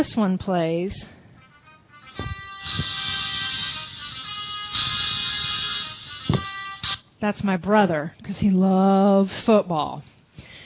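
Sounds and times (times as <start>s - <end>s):
speech: 0.0s - 1.2s, 7.2s - 10.1s
tinny mobile phone ringtone melody: 1.4s - 7.0s
soft thumping beats: 2.1s - 3.3s, 6.2s - 6.6s.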